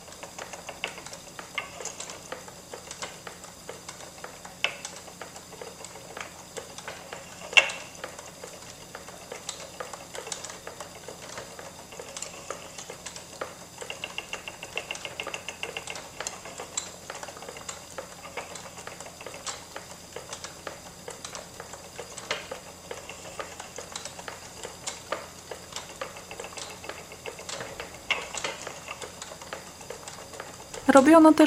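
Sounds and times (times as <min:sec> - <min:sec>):
small irregular clicks and taps: 0:00.0 - 0:30.8
spinning wheel winding thread from flax or wool: 0:00.0 - 0:31.4
speech: 0:30.9 - 0:31.4.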